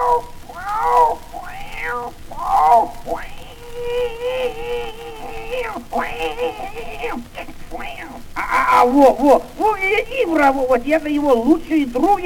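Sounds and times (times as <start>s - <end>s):
person imitating cat meowing: 0.0s - 10.2s
speech: 8.9s - 9.5s, 10.3s - 12.2s.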